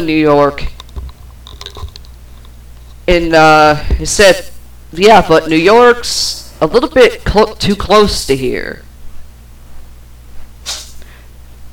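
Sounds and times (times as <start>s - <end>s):
speech: 0.0s - 0.8s, 3.1s - 8.8s
steady low electrical hum: 0.0s - 11.7s
cat sneezing: 10.6s - 11.0s.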